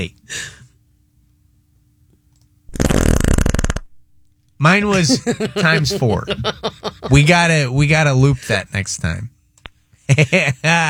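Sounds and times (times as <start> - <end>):
speech: 0.0 - 0.6, 4.6 - 9.4, 10.1 - 10.8
loud buzzy fart sound effect: 2.7 - 3.9
laughter: 4.9 - 7.4.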